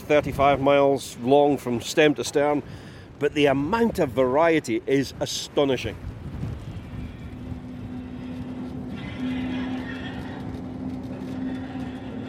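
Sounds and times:
speech: 0:00.1 - 0:06.1
tram wheels and carriage rumbling: 0:06.0 - 0:12.2
electric mountain tram motor humming while climbing steep incline: 0:06.6 - 0:12.2.

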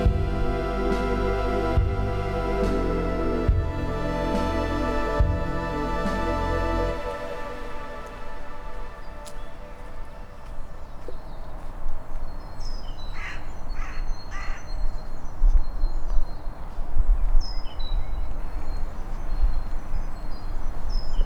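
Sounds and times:
steady low rumble: 0:00.0 - 0:11.0
birds chirping in hospital grounds: 0:00.0 - 0:21.2
faint soft footfalls of a person walking: 0:07.0 - 0:12.6
crow cawing: 0:13.1 - 0:14.7.

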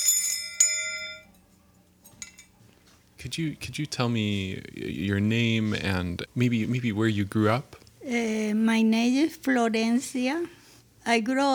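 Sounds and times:
small hand bell ringing: 0:00.0 - 0:01.4
faint soft clinks: 0:00.0 - 0:03.0
speech: 0:03.2 - 0:11.5.

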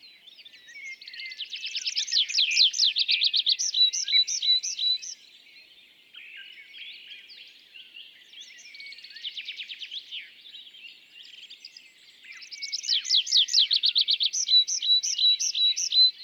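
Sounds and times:
tree pipit display song with rapid trill and fast notes: 0:00.0 - 0:16.2.

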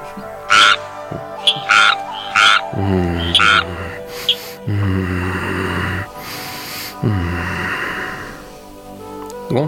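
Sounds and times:
frog croaking: 0:00.2 - 0:07.8.

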